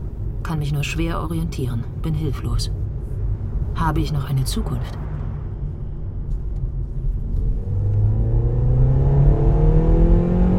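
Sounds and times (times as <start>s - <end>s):
motorway road rumble: 0.0s - 10.5s
speech: 0.4s - 2.8s, 3.8s - 5.0s
car engine accelerating on a motorway: 5.0s - 10.5s.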